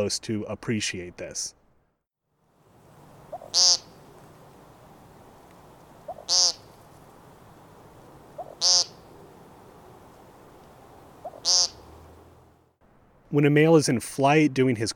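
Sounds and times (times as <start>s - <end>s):
speech: 0.0s - 1.6s, 3.5s - 3.9s, 6.3s - 6.6s, 8.6s - 8.9s, 13.3s - 14.9s
male American woodcock nasal buzzy peent calls: 3.2s - 12.2s.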